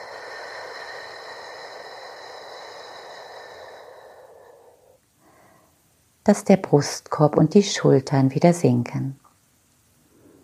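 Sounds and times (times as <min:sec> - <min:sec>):
long slow breath in through the nose and slowly out: 0:00.0 - 0:05.8
speech: 0:06.3 - 0:09.2.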